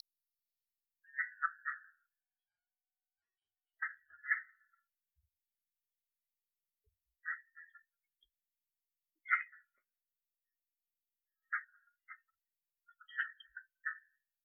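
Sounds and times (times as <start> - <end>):
red-eyed tree frog Agalychnis callidryas calls: 1.0 - 2.1, 3.8 - 4.8, 7.2 - 7.9, 9.2 - 9.7, 11.4 - 12.3, 12.9 - 14.2.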